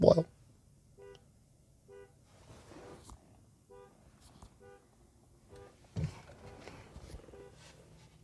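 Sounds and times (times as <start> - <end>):
speech: 0.0 - 0.3
car alarm blaring short harsh beeps: 0.9 - 2.2, 3.7 - 4.0, 4.6 - 4.9, 5.5 - 5.8, 6.4 - 7.6.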